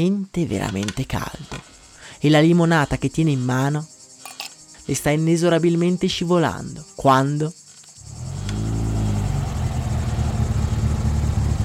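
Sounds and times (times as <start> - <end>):
speech: 0.0 - 1.6, 2.2 - 3.9, 4.9 - 7.6
insects buzzing: 0.0 - 11.6
car engine starting and rumbling: 8.0 - 11.6.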